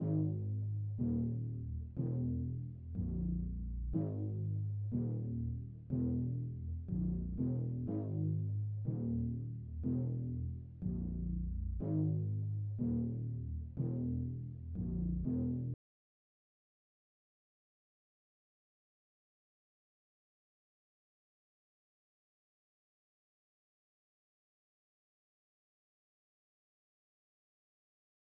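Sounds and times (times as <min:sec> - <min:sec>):
122 BPM G sharp minor bass line: 0:00.0 - 0:15.8.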